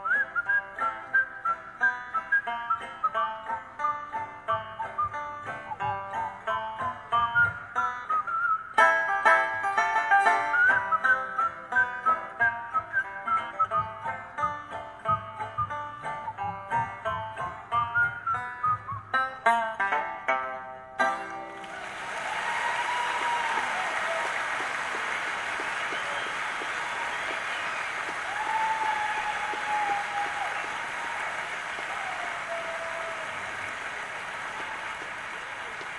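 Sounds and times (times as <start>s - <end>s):
several people whistling a tune: 0.0s - 3.3s, 4.6s - 5.9s, 7.2s - 8.8s, 10.3s - 14.0s, 17.7s - 19.2s, 21.7s - 35.9s
instrumental backing music: 0.0s - 31.8s.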